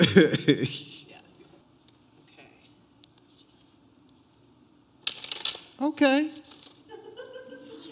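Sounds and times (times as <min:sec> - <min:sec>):
laughter: 0:00.0 - 0:00.9, 0:06.9 - 0:07.8
deck of cards shuffled: 0:05.0 - 0:06.9.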